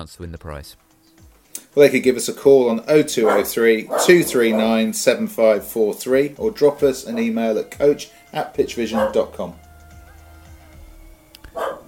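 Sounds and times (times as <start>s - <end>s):
speech: 0.0s - 0.9s, 1.8s - 9.6s
dog bark: 3.2s - 4.9s, 8.9s - 9.3s, 11.5s - 11.8s.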